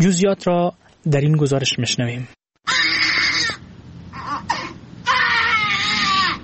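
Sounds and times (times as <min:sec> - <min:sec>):
speech: 0:00.0 - 0:02.4
newborn baby wailing: 0:02.7 - 0:06.4.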